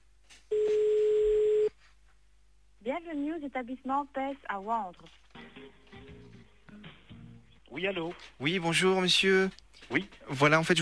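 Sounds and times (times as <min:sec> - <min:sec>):
telephone ringing tone on a call to a car dealership: 0:00.5 - 0:01.7
speech: 0:03.0 - 0:05.8, 0:07.7 - 0:10.8.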